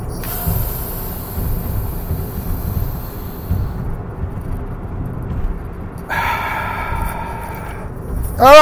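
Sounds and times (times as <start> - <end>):
steady hiss: 0.0 - 8.4
deep breath drawn in, held and exhaled: 0.1 - 3.9, 6.0 - 8.2.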